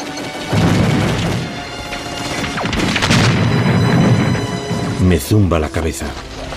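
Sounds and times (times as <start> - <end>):
gunfire fired blindly through smoke in the battle of Stalingrad: 0.5 - 4.9
speech: 5.1 - 6.4.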